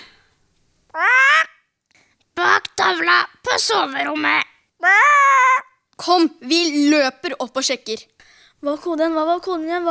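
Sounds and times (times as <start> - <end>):
parrot squawking: 0.9 - 1.7, 4.2 - 5.8
speech: 2.9 - 5.3, 6.0 - 9.9.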